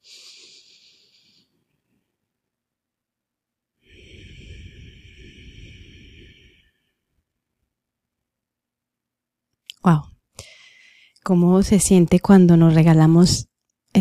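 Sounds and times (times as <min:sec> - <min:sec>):
long exhale: 0:00.0 - 0:01.5, 0:03.8 - 0:07.0, 0:10.4 - 0:11.2
deep inhale: 0:00.0 - 0:01.6, 0:03.8 - 0:07.2, 0:10.4 - 0:11.2
speech: 0:09.8 - 0:10.1, 0:11.3 - 0:13.9.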